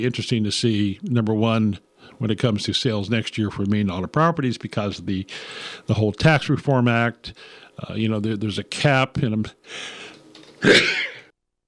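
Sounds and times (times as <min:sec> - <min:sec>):
speech: 0:00.0 - 0:11.1
single human sneeze: 0:10.6 - 0:11.3.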